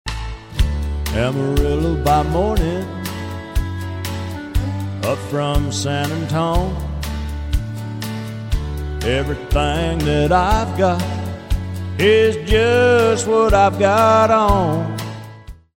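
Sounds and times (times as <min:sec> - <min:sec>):
person singing: 0:01.0 - 0:07.0, 0:08.7 - 0:15.2.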